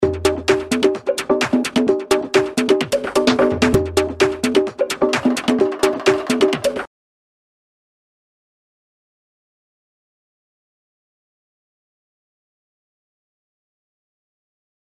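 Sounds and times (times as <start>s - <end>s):
tribal percussion: 0.0s - 6.9s.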